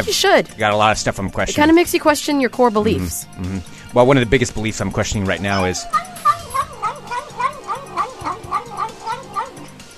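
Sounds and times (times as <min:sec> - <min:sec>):
speech: 0:00.0 - 0:06.1
cat meowing: 0:05.5 - 0:09.8.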